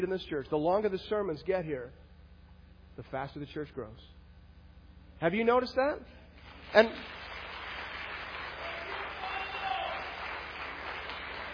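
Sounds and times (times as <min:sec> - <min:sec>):
speech: 0:00.0 - 0:02.1, 0:03.0 - 0:04.2, 0:05.2 - 0:07.2
audience applauding during a sermon in church: 0:06.5 - 0:11.5.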